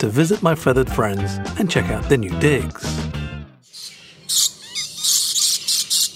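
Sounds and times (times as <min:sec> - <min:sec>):
speech: 0:00.0 - 0:03.2
lories squawking in an aviary: 0:03.7 - 0:06.1.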